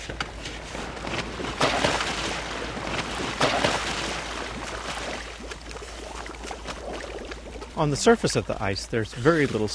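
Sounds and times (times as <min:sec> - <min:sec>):
rush of wind and water: 0:00.0 - 0:09.7
divers in wetsuits splashing into sea water: 0:00.4 - 0:08.2
speech: 0:07.8 - 0:09.7.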